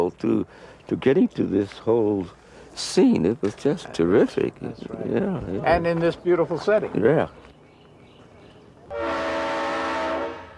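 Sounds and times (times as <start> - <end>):
speech: 0.0 - 7.4
train horn blaring: 8.9 - 10.5.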